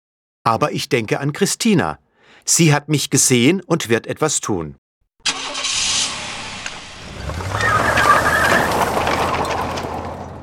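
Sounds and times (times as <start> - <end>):
speech: 0.5 - 4.8
car engine starting and driving off: 5.2 - 10.4.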